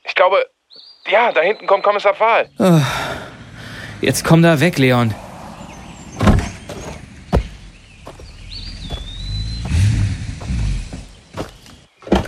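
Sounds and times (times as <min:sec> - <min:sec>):
speech: 0:00.2 - 0:03.0, 0:04.0 - 0:05.2
vehicle rolling slowly forward with low engine rumble: 0:02.6 - 0:12.2
car doors opening and shutting: 0:05.6 - 0:09.8, 0:10.4 - 0:12.2.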